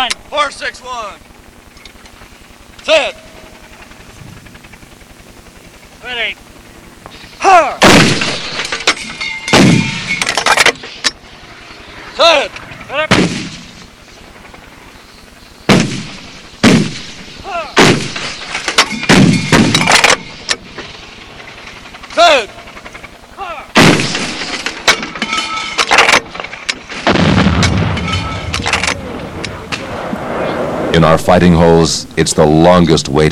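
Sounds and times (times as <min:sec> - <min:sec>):
speech: 0:00.0 - 0:01.3, 0:02.8 - 0:03.3, 0:06.0 - 0:06.5, 0:07.4 - 0:09.2, 0:12.2 - 0:13.4, 0:31.0 - 0:33.2
loud booming artillery fire blasts: 0:07.8 - 0:10.3, 0:12.7 - 0:13.9, 0:15.7 - 0:20.4, 0:23.7 - 0:31.4.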